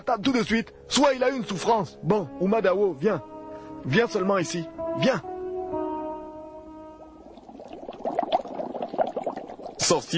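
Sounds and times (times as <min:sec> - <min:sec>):
speech: 0:00.0 - 0:05.3, 0:09.9 - 0:10.1
water boiling in a pot: 0:07.0 - 0:10.1.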